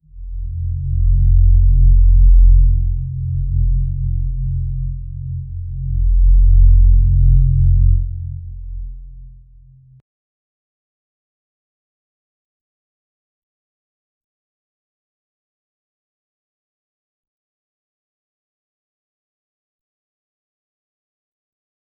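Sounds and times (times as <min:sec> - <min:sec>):
deep cinematic low frequency: 0:00.0 - 0:10.0.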